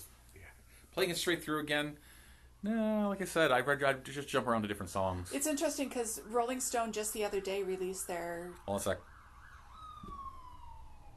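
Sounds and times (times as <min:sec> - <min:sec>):
speech: 0:01.0 - 0:09.1
ambulance siren wailing by: 0:05.2 - 0:11.1.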